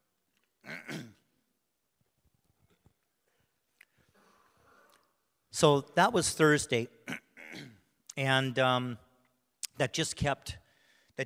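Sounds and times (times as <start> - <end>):
loud rasping throat clearing: 0.6 - 1.3, 7.0 - 7.9
speech: 5.6 - 7.2, 8.2 - 9.0, 9.8 - 10.6.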